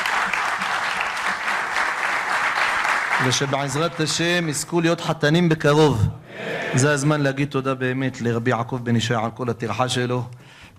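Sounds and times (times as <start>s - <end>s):
crowd of many hands applauding: 0.0s - 4.8s
speech: 3.2s - 10.7s.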